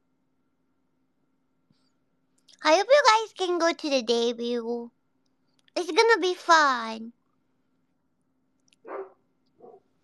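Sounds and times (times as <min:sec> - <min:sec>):
speech: 0:02.6 - 0:05.0, 0:05.8 - 0:07.2
angry dog barking: 0:08.8 - 0:09.9.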